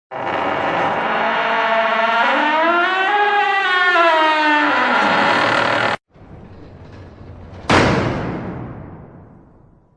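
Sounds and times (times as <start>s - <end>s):
door creak: 0.1s - 8.5s.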